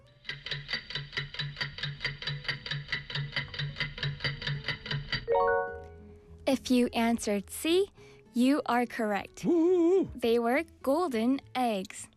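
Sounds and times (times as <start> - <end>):
game-show countdown clock ticking: 0.2 - 5.4
speech: 6.5 - 12.1.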